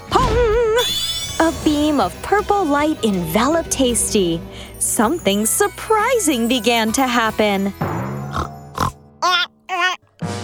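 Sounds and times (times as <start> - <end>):
pig wavering squealing oinks: 0.8 - 2.1, 8.3 - 10.0
speech: 1.6 - 7.9
pig grunting: 8.3 - 9.4.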